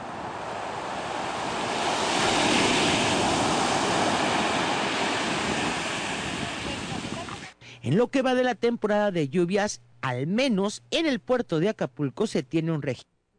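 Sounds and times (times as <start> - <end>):
ocean ground swell waves breaking on a beach on the Guerrero coast of Mexico: 0.0 - 7.6
wind noise: 0.0 - 7.6
speech: 7.8 - 13.1.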